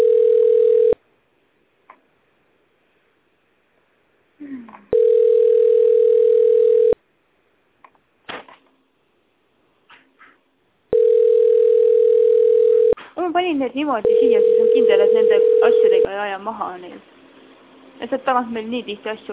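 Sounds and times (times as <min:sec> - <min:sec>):
telephone line tone while on hold: 0:00.0 - 0:01.0, 0:04.9 - 0:07.0, 0:10.9 - 0:13.0, 0:14.0 - 0:16.1
speech: 0:13.6 - 0:17.2, 0:18.0 - 0:19.3.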